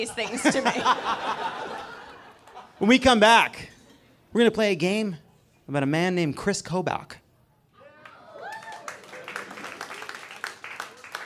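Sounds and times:
speech: 0:00.0 - 0:02.0, 0:02.8 - 0:03.7, 0:04.3 - 0:07.2
laughter: 0:00.0 - 0:03.0
scattered lukewarm audience applause: 0:07.9 - 0:11.2.

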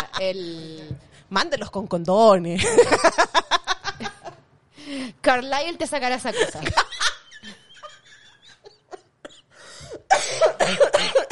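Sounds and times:
speech: 0:00.2 - 0:03.6, 0:04.9 - 0:06.9
small coughs: 0:09.2 - 0:11.3.

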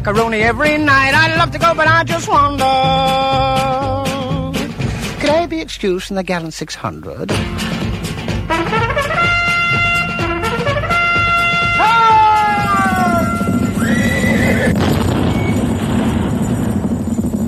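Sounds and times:
speech: 0:00.0 - 0:04.2, 0:05.2 - 0:07.9
horse hooves clip-clopping: 0:07.6 - 0:17.4
horse whinnying: 0:11.3 - 0:15.6.

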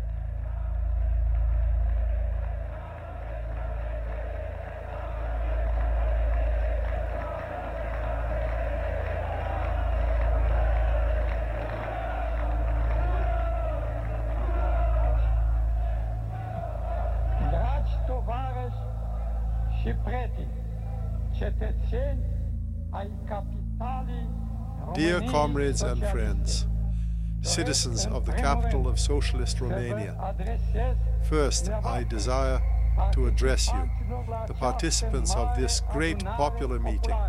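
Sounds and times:
large crowd cheering in a square: 0:00.0 - 0:21.2, 0:31.3 - 0:37.2
low rumble: 0:00.0 - 0:37.2
speech: 0:21.5 - 0:22.3, 0:23.0 - 0:26.7, 0:27.4 - 0:37.2
man's amplified voice speaking: 0:23.0 - 0:26.7, 0:27.4 - 0:37.2.

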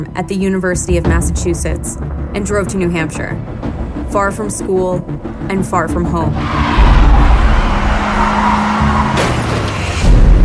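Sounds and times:
speech: 0:00.0 - 0:06.8
car engine rumbling: 0:00.0 - 0:10.4
car tires skidding with a drawn-out squeal: 0:06.3 - 0:10.4.

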